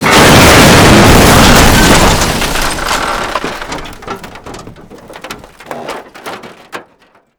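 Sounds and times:
car crash: 0.0s - 7.3s.

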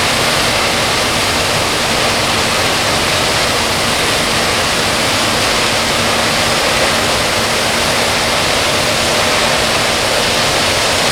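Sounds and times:
aircraft auxiliary power unit running: 0.0s - 11.1s.

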